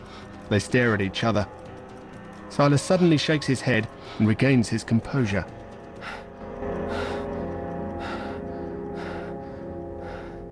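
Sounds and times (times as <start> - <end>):
man breathing heavily after a tense confrontation: 0.0 - 0.5, 3.9 - 4.4, 5.6 - 10.5
low sustained musical drone: 0.0 - 10.5
speech: 0.5 - 1.6, 2.6 - 6.2.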